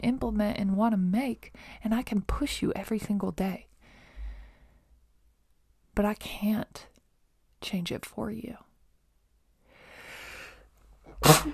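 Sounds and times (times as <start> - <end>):
speech: 0.0 - 3.7, 6.0 - 6.9, 7.6 - 8.7, 11.2 - 11.5
airy intake of breath: 9.7 - 11.5
person sneezing: 11.1 - 11.5.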